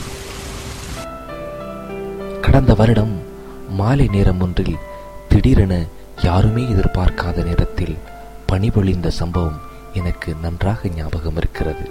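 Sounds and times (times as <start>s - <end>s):
light drizzle falling at midnight: 0.0s - 1.1s
speech: 2.5s - 11.9s.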